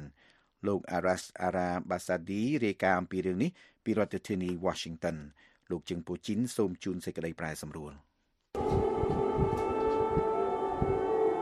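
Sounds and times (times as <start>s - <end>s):
speech: 0.6s - 8.8s
air raid siren wailing during drone attack: 8.6s - 11.4s
low rumbling noise: 8.6s - 11.4s.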